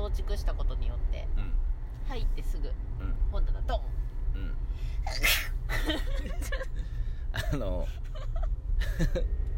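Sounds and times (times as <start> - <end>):
speech: 0.2 - 1.1, 2.1 - 6.0, 7.5 - 8.0, 9.0 - 9.4
sneeze: 5.1 - 5.6
laughter: 5.7 - 9.3.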